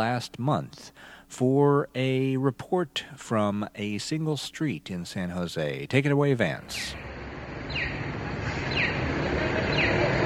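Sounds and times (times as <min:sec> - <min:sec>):
speech: 0:00.0 - 0:07.1, 0:07.7 - 0:09.1
street traffic noise in San Jose: 0:06.6 - 0:10.2
pedestrian crossing signal for blind people chirping in San Jose: 0:07.6 - 0:10.2.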